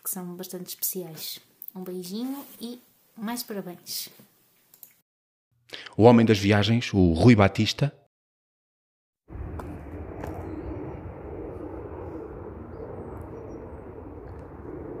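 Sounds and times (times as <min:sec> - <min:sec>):
speech: 0:00.1 - 0:04.3, 0:05.7 - 0:08.0
airplane flying overhead: 0:09.3 - 0:14.9.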